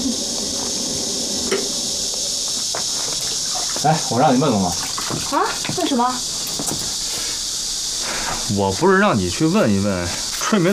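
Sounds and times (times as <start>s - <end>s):
water spraying: 0.0s - 7.4s, 8.0s - 10.7s
water splashing: 2.8s - 5.7s
speech: 3.8s - 6.8s, 8.5s - 10.7s.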